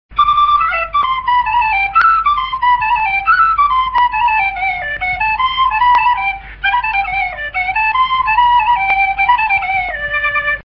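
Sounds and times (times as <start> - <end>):
key whistle: 0.2 - 10.6.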